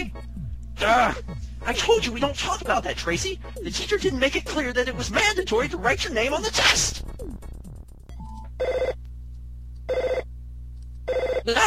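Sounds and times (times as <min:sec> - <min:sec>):
steady low hum: 0:00.0 - 0:11.4
speech: 0:00.8 - 0:07.1
telephone ringing: 0:08.2 - 0:09.0, 0:09.9 - 0:10.3, 0:11.1 - 0:11.5.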